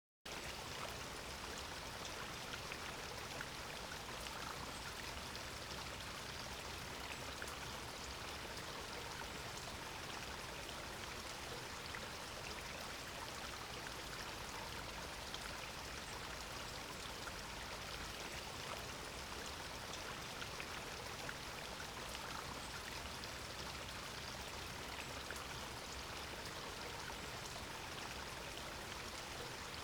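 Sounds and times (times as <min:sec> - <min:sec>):
babbling brook: 0:00.3 - 0:29.8.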